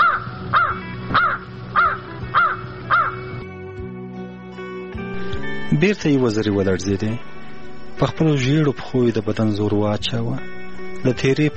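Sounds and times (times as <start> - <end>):
crow giving harsh hoarse caws: 0.0 - 3.3
speech: 5.8 - 7.4, 8.0 - 11.5.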